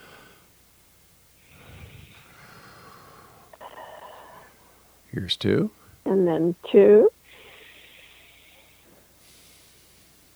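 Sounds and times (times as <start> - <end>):
slow deep breath drawn in and released: 0.0 - 0.6, 1.4 - 5.1, 7.2 - 10.3
speech: 5.2 - 7.2.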